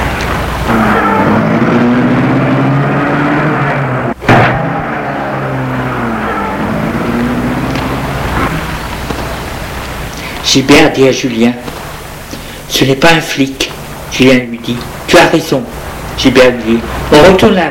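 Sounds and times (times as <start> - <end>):
car engine starting: 0.0 - 10.4
speech: 10.5 - 11.8, 12.7 - 17.6.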